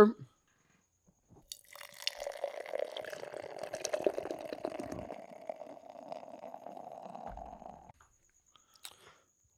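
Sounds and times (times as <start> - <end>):
beer being poured into a glass: 1.5 - 7.9.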